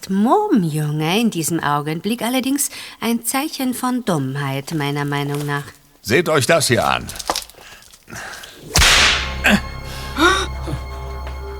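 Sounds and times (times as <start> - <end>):
speech: 0.1 - 7.3, 8.1 - 8.8
whip cracking: 8.7 - 9.6.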